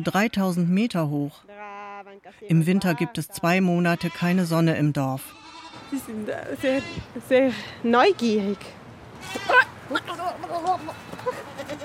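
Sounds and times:
speech: 0:00.0 - 0:01.5, 0:02.3 - 0:11.8
goats with long curved horns bleating: 0:02.8 - 0:07.1, 0:08.2 - 0:11.8.

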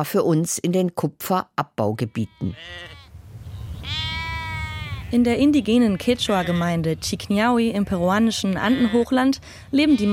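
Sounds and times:
speech: 0:00.0 - 0:03.0, 0:05.1 - 0:10.1
sheep bleating in a Quechua farming community in the Peruvian Andean highlands: 0:02.0 - 0:06.9, 0:07.6 - 0:10.1
low rumbling outdoor background in the Peruvian Andean highlands: 0:03.2 - 0:10.1.

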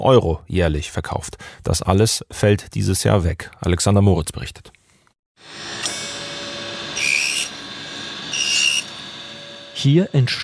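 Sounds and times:
speech: 0:00.0 - 0:04.8, 0:09.8 - 0:10.4
circular saw cutting thin wooden slices: 0:05.4 - 0:10.4.

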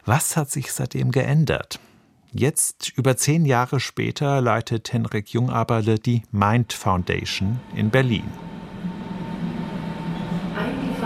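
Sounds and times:
speech: 0:00.0 - 0:08.5
S-Bahn commuter train rumbling at a station platform: 0:06.7 - 0:11.0
faint electric whine of S-Bahn commuter train: 0:07.1 - 0:11.0.

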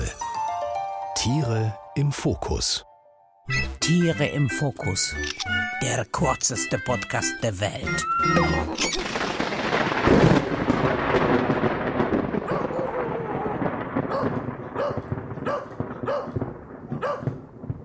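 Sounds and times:
speech: 0:01.2 - 0:02.9, 0:03.5 - 0:09.3
rolling thunder in a loud thunderstorm: 0:09.0 - 0:17.8
dog barking: 0:12.5 - 0:12.7, 0:14.1 - 0:17.4.

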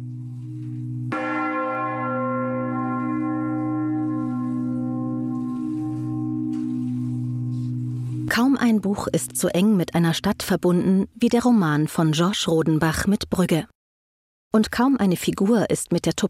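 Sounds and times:
church bells tolling: 0:00.1 - 0:10.5
speech: 0:08.6 - 0:13.7, 0:14.5 - 0:16.2.

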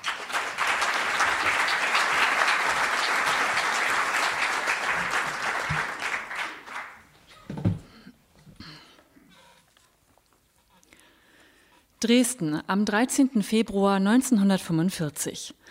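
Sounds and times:
live audience applause: 0:00.0 - 0:07.1
speech: 0:12.0 - 0:15.6.

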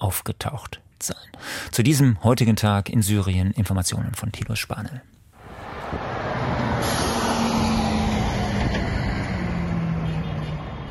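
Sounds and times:
speech: 0:00.1 - 0:05.2
heavy trucks rumbling to a halt at the Bab el-Hawa border crossing: 0:05.4 - 0:10.9
road noise at the Bab el-Hawa border crossing: 0:05.4 - 0:10.9.

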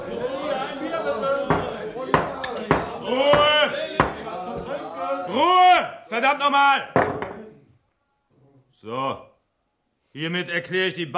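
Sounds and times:
murmuring crowd chatter and voices: 0:00.0 - 0:05.4
judge's gavel knocking on a wooden bar counter: 0:01.5 - 0:04.2
speech: 0:06.2 - 0:07.0, 0:08.8 - 0:09.3, 0:10.1 - 0:11.1.

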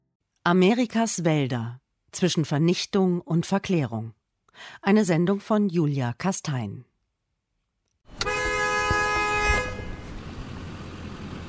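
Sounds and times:
speech: 0:00.4 - 0:06.9
loud sustained car horn blaring: 0:08.1 - 0:10.2
car engines idling in a traffic jam: 0:08.1 - 0:11.4.

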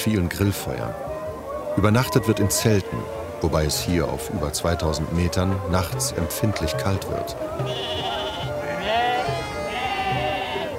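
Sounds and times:
speech: 0:00.0 - 0:01.1, 0:01.8 - 0:08.1
steady low murmur: 0:00.6 - 0:10.7
flock of sheep bleating: 0:07.5 - 0:10.7.

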